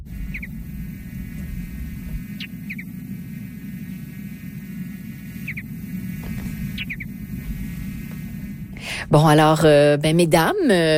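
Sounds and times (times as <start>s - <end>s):
mountain bluebird song: 0.0s - 4.1s, 5.2s - 8.1s
steady low rumble and hum: 0.0s - 10.9s
speech: 9.0s - 10.9s.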